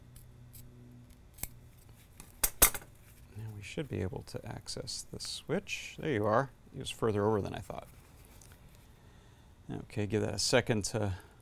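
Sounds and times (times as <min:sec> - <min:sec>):
scissors snipping to enlarge a cut hole: 0:00.1 - 0:01.6
speech: 0:03.6 - 0:08.0, 0:09.7 - 0:11.3.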